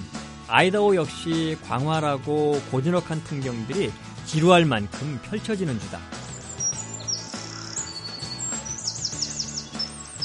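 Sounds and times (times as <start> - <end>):
low music: 0.0 - 10.2
speech: 0.5 - 6.2
mountain bluebird chirping: 6.2 - 10.2.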